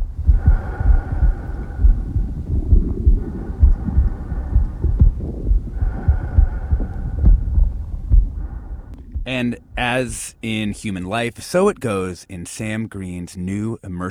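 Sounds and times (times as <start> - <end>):
heartbeat heard from inside the womb: 0.0 - 10.9
deep whooshing hum inside the womb: 0.0 - 11.0
speech: 9.3 - 14.1.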